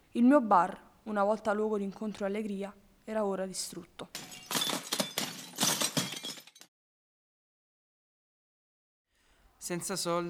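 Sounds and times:
speech: 0:00.2 - 0:04.2, 0:09.7 - 0:10.2
glass bottles shattering during a bar brawl: 0:04.1 - 0:06.7
tinkling glass shards: 0:04.1 - 0:06.7.

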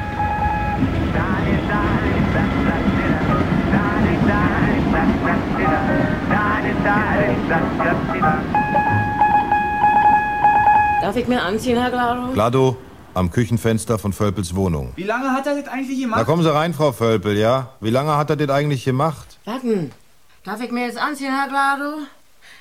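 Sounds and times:
S-Bahn commuter train passing outside a house: 0:00.0 - 0:14.2
high squealing metallic tones of a passing S-Bahn commuter train: 0:08.2 - 0:11.3
speech: 0:11.1 - 0:22.2.

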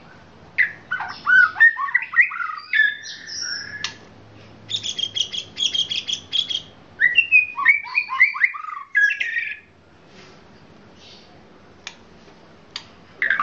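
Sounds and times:
Oriental magpie-robin singing whistled slurs and harsh notes: 0:00.1 - 0:04.0, 0:04.7 - 0:09.7, 0:11.0 - 0:11.4, 0:13.2 - 0:13.4.

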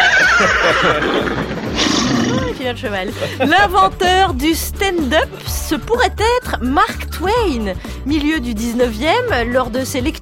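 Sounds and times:
man imitating a horse neighing: 0:00.0 - 0:02.6
laughter: 0:00.0 - 0:04.0
speech: 0:00.8 - 0:01.8, 0:02.6 - 0:10.2.

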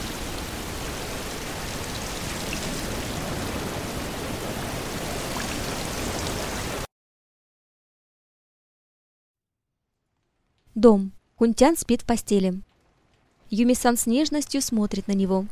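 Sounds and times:
steady dense rain pouring: 0:00.0 - 0:06.9
speech: 0:10.8 - 0:12.7, 0:13.5 - 0:15.5.

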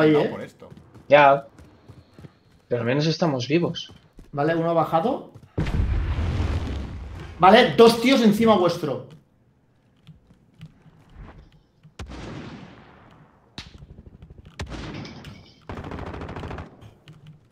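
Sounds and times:
speech: 0:00.0 - 0:01.5, 0:02.7 - 0:05.7, 0:07.4 - 0:09.2
automatic gunfire in a first-person shooter video game: 0:12.0 - 0:16.8.

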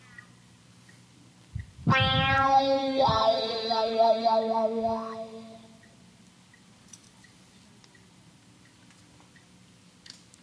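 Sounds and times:
guitar note through an amplifier's built-in effect: 0:01.8 - 0:05.8.

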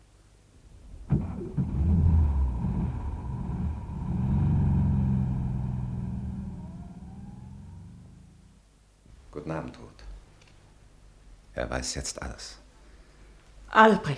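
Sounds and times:
car engine rumble: 0:00.6 - 0:08.8
faint rising whine: 0:00.6 - 0:08.8
sharp knock: 0:01.1 - 0:03.8
speech: 0:11.7 - 0:12.6, 0:13.7 - 0:14.1.

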